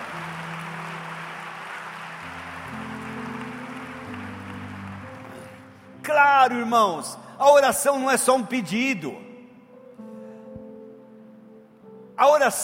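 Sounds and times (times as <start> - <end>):
large crowd applauding at a Christian worship service: 0.0 - 5.9
speech: 6.2 - 9.2, 12.4 - 12.6.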